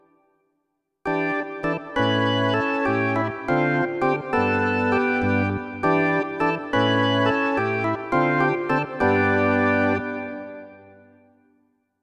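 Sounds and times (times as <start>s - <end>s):
rock organ: 1.1s - 10.6s.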